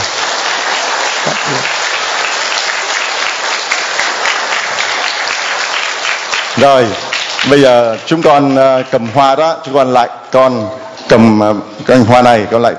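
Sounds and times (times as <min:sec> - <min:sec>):
large audience applauding: 0:00.0 - 0:09.1
speech: 0:06.6 - 0:12.7.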